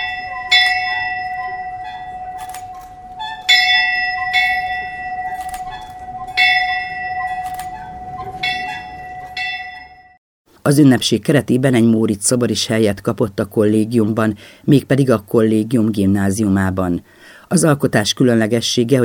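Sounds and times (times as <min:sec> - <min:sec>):
newly installed college dormitory bell ringing at its handover ceremony in Hungary: 0:00.0 - 0:10.2
speech: 0:10.7 - 0:19.0.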